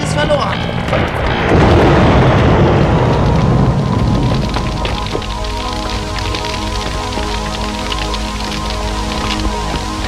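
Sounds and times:
hacienda and barn burning in a loud roaring blaze: 0:00.0 - 0:10.0.

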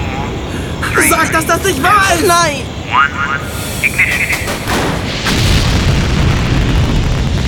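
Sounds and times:
speech: 0:01.0 - 0:04.9
launch ignition bang swelling into roaring hiss of rushing exhaust: 0:03.4 - 0:07.4.

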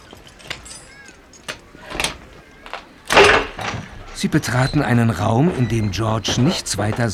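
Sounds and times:
key clicking and rattling in a door lock: 0:00.0 - 0:07.1
door at the top of a staircase scraping open: 0:00.4 - 0:07.1
speech: 0:04.2 - 0:07.1.

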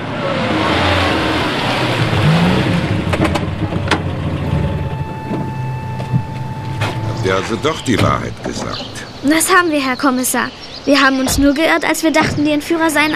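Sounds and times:
car engines rumbling as vehicles pull away: 0:00.0 - 0:09.8
road noise: 0:00.0 - 0:13.1
speech: 0:07.4 - 0:13.1.

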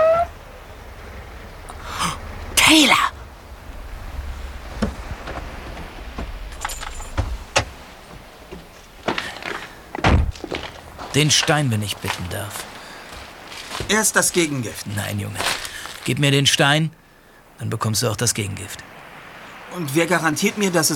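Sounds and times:
car engine rumbling low: 0:00.0 - 0:11.2
person calling out: 0:01.7 - 0:03.2
speech: 0:02.7 - 0:03.1, 0:11.2 - 0:12.7, 0:13.9 - 0:17.0, 0:17.6 - 0:18.9, 0:19.7 - 0:20.9.

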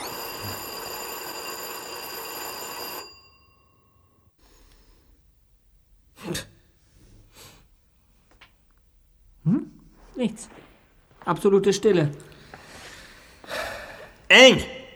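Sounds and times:
doorbell at an apartment door ringing: 0:00.0 - 0:04.1
speech: 0:10.2 - 0:10.6, 0:11.2 - 0:12.3, 0:14.3 - 0:14.8.

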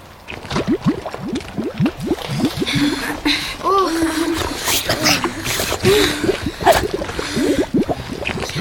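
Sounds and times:
water gurgling: 0:00.0 - 0:08.5
brief vocal sounds: 0:03.6 - 0:07.7.

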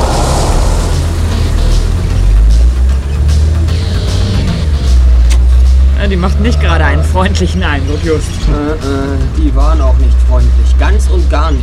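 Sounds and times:
road hiss: 0:00.0 - 0:02.1
car engine rumbling as the vehicle pulls away: 0:00.0 - 0:11.6
speech: 0:06.2 - 0:11.6.

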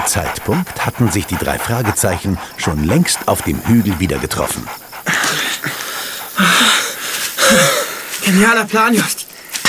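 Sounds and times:
exhausted dog panting heavily: 0:00.0 - 0:07.4
speech: 0:00.1 - 0:05.4, 0:07.5 - 0:09.2.

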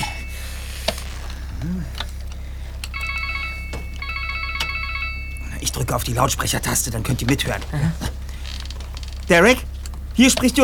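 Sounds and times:
mobile phone electronic ringtone: 0:00.0 - 0:00.8, 0:02.9 - 0:05.8
low hum: 0:00.0 - 0:10.6
speech: 0:05.8 - 0:08.1, 0:09.3 - 0:10.6.

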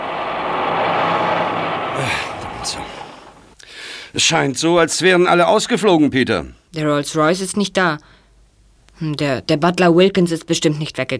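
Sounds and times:
truck brake hiss and squeal stopping in front of a house: 0:00.0 - 0:03.6
truck engine rumbling as it slows: 0:00.0 - 0:03.6
speech: 0:02.0 - 0:02.8, 0:04.2 - 0:08.2, 0:09.0 - 0:11.1.

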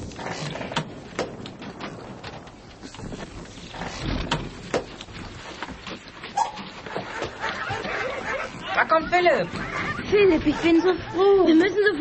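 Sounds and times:
knocks and clatters: 0:00.0 - 0:08.7
dogs barking: 0:06.3 - 0:11.6
speech: 0:09.0 - 0:12.0.

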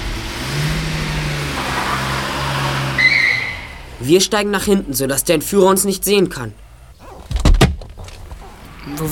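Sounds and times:
car engine revving as the vehicle pulls off: 0:00.0 - 0:09.0
brief high squeal: 0:02.9 - 0:03.9
speech: 0:04.0 - 0:06.6, 0:08.9 - 0:09.0.

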